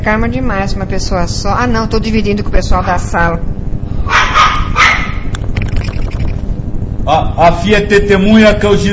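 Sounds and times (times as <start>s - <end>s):
speech: 0.0s - 4.5s, 7.1s - 8.9s
low rumble: 0.0s - 8.9s
dog barking: 4.1s - 5.3s.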